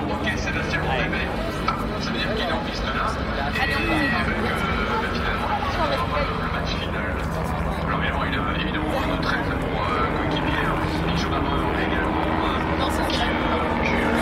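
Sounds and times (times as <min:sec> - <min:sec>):
helicopter flying overhead with rotor and engine noise: 0:00.0 - 0:14.2
indistinct voices: 0:00.0 - 0:14.2.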